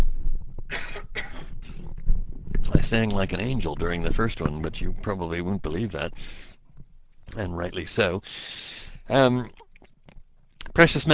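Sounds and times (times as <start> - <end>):
person with a scratchy voice coughing: 0.7 - 1.8
speech: 2.9 - 6.5, 7.3 - 9.6, 10.8 - 11.1.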